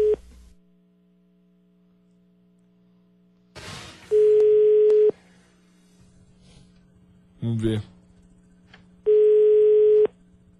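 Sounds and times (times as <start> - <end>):
faint low hum: 0.0 - 10.5
telephone ringback tone while a call connects: 4.1 - 5.2, 9.1 - 10.1
speech: 7.4 - 8.0.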